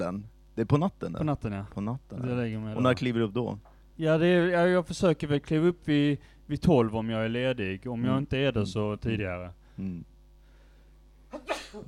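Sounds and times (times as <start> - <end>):
speech: 0.0 - 10.1, 11.3 - 11.8
sneeze: 11.3 - 11.8.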